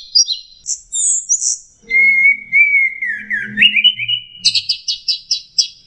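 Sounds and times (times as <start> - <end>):
orange-headed thrush singing: 1.8 - 4.7.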